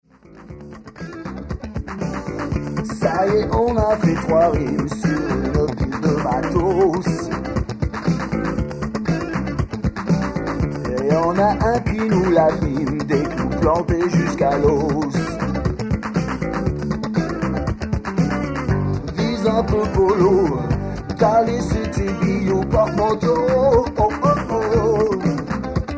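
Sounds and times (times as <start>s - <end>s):
rock solo: 0.1s - 25.9s.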